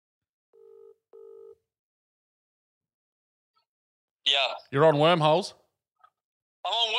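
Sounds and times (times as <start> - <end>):
phone ringing tone over a speakerphone: 0.6 - 1.6
speech: 4.3 - 5.6.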